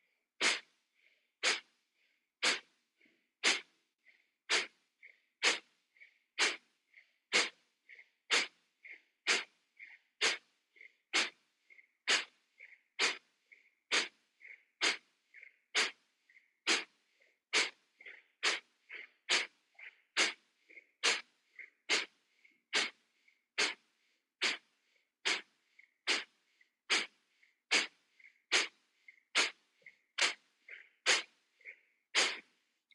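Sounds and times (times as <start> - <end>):
forceful nasal Kapalabhati breathing exhalations: 0.4 - 0.7, 1.4 - 1.8, 2.4 - 2.8, 3.4 - 3.8, 4.5 - 4.8, 5.4 - 5.7, 6.4 - 6.7, 7.3 - 7.6, 8.3 - 8.6, 9.2 - 9.6, 10.2 - 10.5, 11.1 - 11.4, 12.1 - 12.4, 13.0 - 13.2, 13.9 - 14.2, 14.8 - 15.1, 15.7 - 16.0, 16.6 - 17.8, 18.4 - 18.7, 19.3 - 19.6, 20.2 - 20.4, 21.0 - 21.3, 21.9 - 23.0, 23.6 - 23.8, 24.4 - 25.5, 26.1 - 28.8, 29.4 - 29.6, 30.2 - 30.4, 31.0 - 31.4, 32.1 - 32.5.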